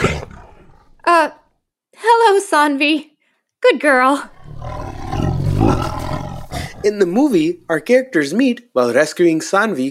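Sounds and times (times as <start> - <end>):
Bengal tiger roaring: 0.0 - 1.0, 4.3 - 7.6
speech: 1.1 - 1.4, 2.0 - 4.8, 6.8 - 9.9.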